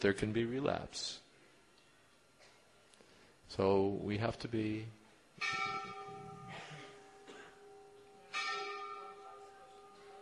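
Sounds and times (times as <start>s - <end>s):
speech: 0.0s - 1.2s, 3.5s - 6.0s
church bell tolling: 5.4s - 10.2s.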